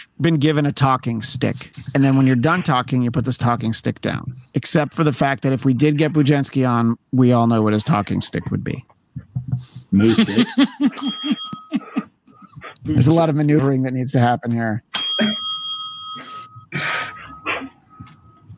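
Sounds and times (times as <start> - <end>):
speech: 0.2 - 9.0, 9.6 - 11.4, 12.8 - 15.4
people laughing and chuckling: 9.5 - 13.4
bell ringing with a clear high tone: 10.4 - 11.9, 14.9 - 18.5.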